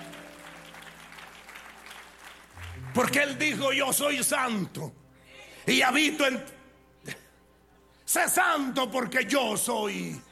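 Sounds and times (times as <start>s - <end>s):
large audience clapping vigorously: 0.0s - 3.8s
sustained low keyboard chord: 0.0s - 6.1s
speech: 3.0s - 5.0s, 5.6s - 7.2s, 8.2s - 10.3s.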